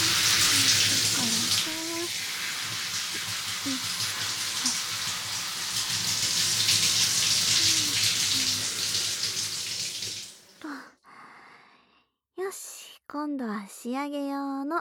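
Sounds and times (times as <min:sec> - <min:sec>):
shower water rinsing oil from hair: 0:00.0 - 0:10.6
quiet drips from shower: 0:00.0 - 0:10.7
speech: 0:13.2 - 0:14.7.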